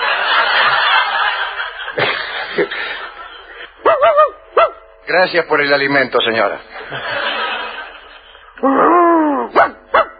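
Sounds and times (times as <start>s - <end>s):
laughter: 0.0s - 3.8s, 6.7s - 8.6s
dog barking: 3.8s - 4.9s, 9.5s - 10.1s
speech: 5.1s - 7.4s, 8.6s - 9.0s.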